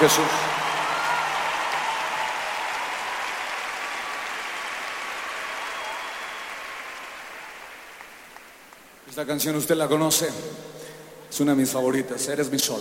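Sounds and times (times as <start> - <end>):
speech: 0.0 - 0.5, 9.2 - 12.7
crowd applauding: 0.0 - 8.9.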